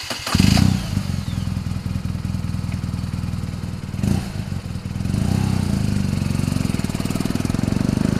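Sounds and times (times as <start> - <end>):
BMW R1200 GS motorcycle engine running: 0.3 - 8.1.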